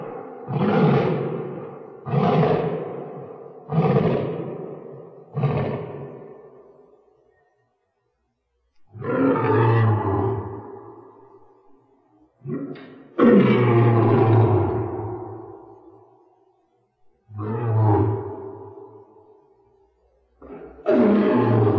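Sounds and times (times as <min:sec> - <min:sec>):
Panthera leo roaring: 0:00.0 - 0:06.7, 0:08.9 - 0:11.2, 0:12.4 - 0:15.7, 0:17.3 - 0:19.1, 0:20.4 - 0:21.7.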